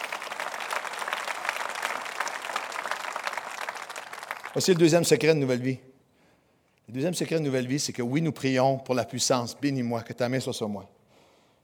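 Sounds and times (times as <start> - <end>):
crowd applauding: 0.0 - 5.2
speech: 4.6 - 5.9, 6.9 - 11.0.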